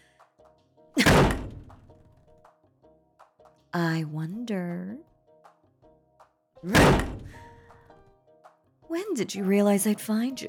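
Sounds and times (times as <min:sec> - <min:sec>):
men's room bathroom stall doors banging open: 0:01.0 - 0:01.9, 0:06.7 - 0:07.5
speech: 0:03.7 - 0:05.1, 0:06.6 - 0:07.4, 0:08.9 - 0:10.4.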